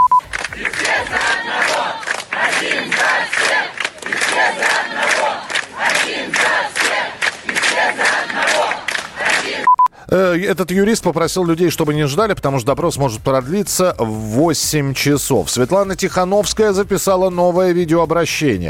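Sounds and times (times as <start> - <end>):
short beeps: 0.0 - 0.3, 9.6 - 10.0
large crowd cheering and chanting slogans: 0.3 - 9.7
speech: 10.2 - 18.6.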